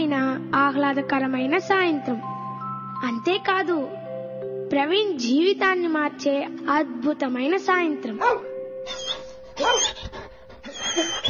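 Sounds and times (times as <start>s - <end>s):
speech: 0.8s - 2.4s, 3.0s - 4.0s, 4.7s - 9.0s, 9.6s - 10.2s, 11.0s - 11.2s
puppy yipping and whimpering while playing on a front-yard lawn: 8.2s - 11.2s.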